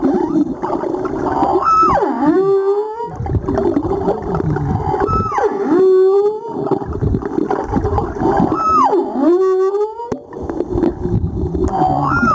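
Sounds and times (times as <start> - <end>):
humpback whale calls: 0.0 - 6.9, 8.2 - 10.3, 11.6 - 12.3
underwater crackle: 0.0 - 12.3.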